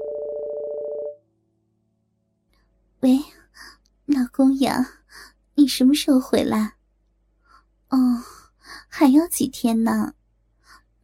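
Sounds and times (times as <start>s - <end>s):
mobile phone ringing with warbling electronic tone: 0.0s - 1.2s
faint hum: 1.0s - 11.0s
speech: 3.0s - 5.0s, 5.6s - 6.8s, 7.9s - 8.3s, 9.0s - 10.2s.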